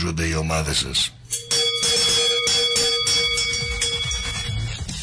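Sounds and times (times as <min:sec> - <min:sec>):
speech: 0:00.0 - 0:02.0
large bell ringing: 0:01.3 - 0:04.9.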